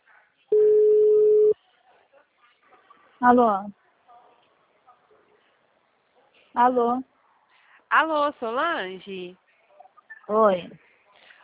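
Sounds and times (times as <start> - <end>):
telephone ringback tone while a call is placed: 0.6 - 1.6
speech: 3.2 - 3.8, 6.6 - 7.1, 7.9 - 9.4, 10.3 - 10.8.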